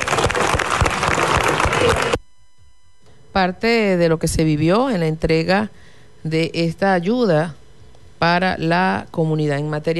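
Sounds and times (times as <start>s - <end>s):
audience applause: 0.0s - 2.2s
speech: 3.4s - 7.6s, 8.2s - 9.9s.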